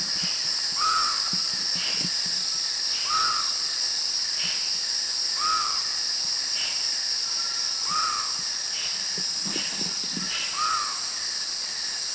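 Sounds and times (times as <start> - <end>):
Javan frogmouth calling in Thailand: 0.1 - 2.1, 3.0 - 3.6, 5.4 - 5.9, 7.4 - 11.1.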